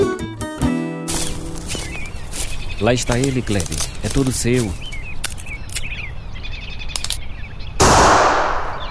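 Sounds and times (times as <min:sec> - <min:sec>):
birds chirping and trilling: 0:01.1 - 0:08.8
speech: 0:02.8 - 0:04.9
rifle shot while hunting deer with long echo: 0:07.8 - 0:08.8.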